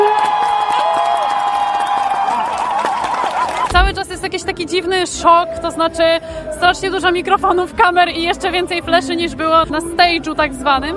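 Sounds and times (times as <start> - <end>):
crowd applause at a championship in imitating bird calls: 0.0 - 4.0
speech: 3.9 - 10.9.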